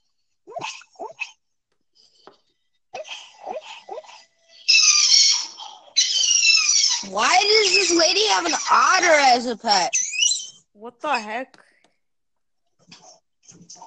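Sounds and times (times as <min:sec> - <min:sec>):
dog whining and yelping: 0:00.5 - 0:01.3, 0:03.0 - 0:10.7
speech: 0:07.1 - 0:10.0, 0:10.8 - 0:11.6.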